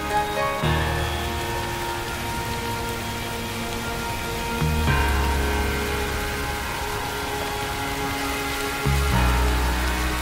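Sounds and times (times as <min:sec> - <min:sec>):
heavy rain pouring: 0:00.0 - 0:10.2
low rumble: 0:00.6 - 0:10.2.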